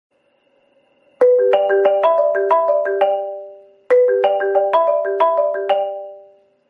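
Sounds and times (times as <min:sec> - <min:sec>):
phone ringtone played on marimba: 0:01.2 - 0:06.6.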